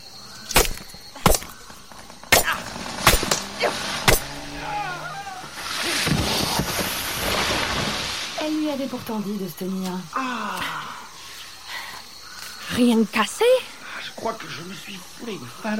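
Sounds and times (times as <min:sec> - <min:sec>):
jungle vines being hacked apart: 0:00.4 - 0:08.9
long rushing rustling noise: 0:05.4 - 0:08.9
speech: 0:08.7 - 0:10.7, 0:12.8 - 0:15.7.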